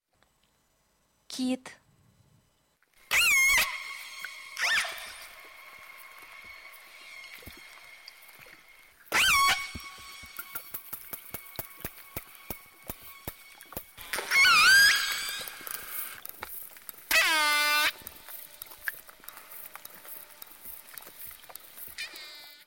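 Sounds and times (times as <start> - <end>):
whale: 3.1 - 10.7, 11.3 - 16.3, 17.1 - 19.0, 21.9 - 22.6.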